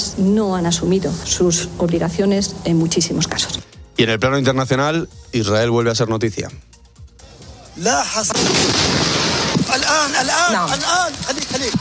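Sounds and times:
speech: 0.2 - 6.7, 7.8 - 9.1, 9.7 - 11.7
projectile blast striking a hospital building in southern Gaza: 8.3 - 10.2.

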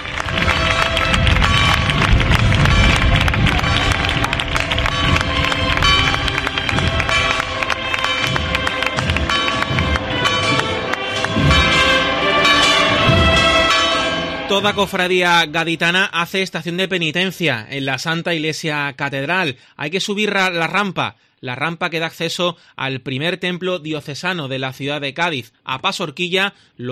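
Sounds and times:
church bells of the Church of San José in Extramuros, Cádiz, Spain pealing: 0.0 - 16.0
speech: 14.6 - 26.9.

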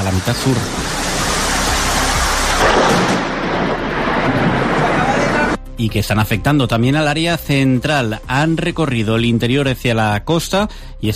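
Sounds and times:
speech: 0.0 - 1.0, 5.8 - 11.1
heavy rain during storms in Castellón province, Spain: 0.0 - 5.6
deep loud rumble of thunder in Castellón province, Spain: 0.2 - 5.6.

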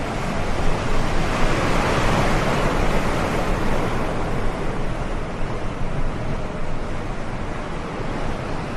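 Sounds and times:
gusting wind: 0.0 - 8.7
rough stormy sea with crashing waves: 0.0 - 8.7.

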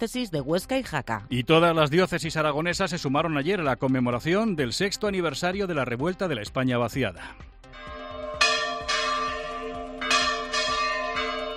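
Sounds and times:
speech: 0.0 - 7.9
church bells ringing in overlapping peals: 7.8 - 11.5.

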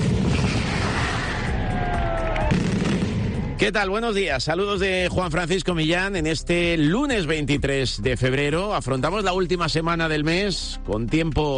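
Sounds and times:
mascletà barrage of firecracker explosions: 0.0 - 3.7
speech: 3.6 - 11.5.

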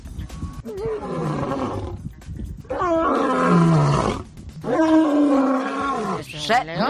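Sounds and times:
lion-like roaring at a zoo: 0.6 - 2.0, 2.7 - 6.3.

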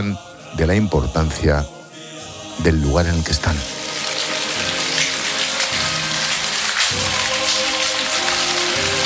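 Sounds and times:
speech: 0.0 - 1.8, 2.6 - 3.8
steady rain falling: 3.3 - 9.0.

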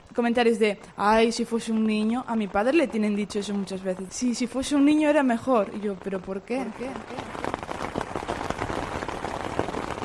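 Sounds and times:
steady rain pattering on a livestock farm under a holm oak: 0.0 - 10.0
speech: 0.2 - 7.4.

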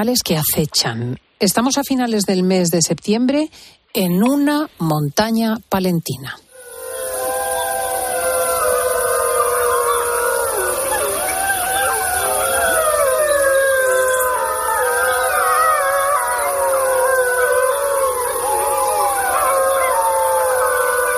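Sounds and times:
speech: 0.0 - 6.4
chorus of many wolves howling: 6.5 - 21.1.

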